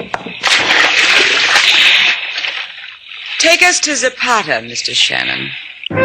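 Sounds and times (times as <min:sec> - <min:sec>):
broad rushing spray and sloshing of sea water: 0:00.3 - 0:05.9
heavy coffin holding a body splashing into the sea from a ship: 0:00.4 - 0:03.6
speech: 0:03.4 - 0:05.7.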